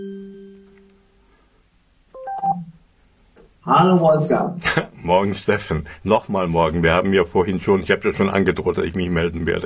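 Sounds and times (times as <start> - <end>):
two-tone dialing beeps from a voice assistant placing a phone call: 2.2 - 2.7
higher warbling tones from a voice assistant placing a phone call: 2.2 - 2.8
speech: 3.8 - 9.6.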